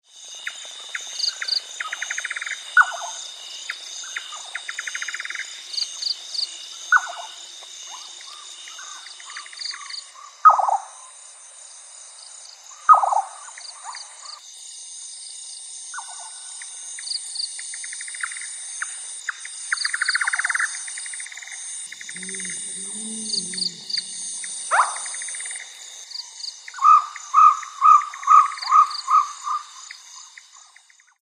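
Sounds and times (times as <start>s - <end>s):
nightbirds of the dry zone calling: 0.4s - 11.1s, 12.6s - 14.4s, 19.3s - 31.1s.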